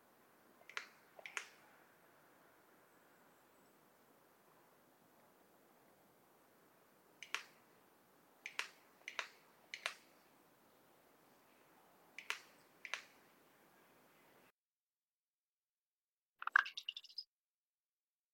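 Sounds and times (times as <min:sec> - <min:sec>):
faint steady hiss: 0:00.0 - 0:14.5
common raven Corvus corax bill snaps and tongue clicks: 0:00.6 - 0:01.6, 0:07.2 - 0:07.6, 0:08.4 - 0:10.1, 0:12.2 - 0:13.2.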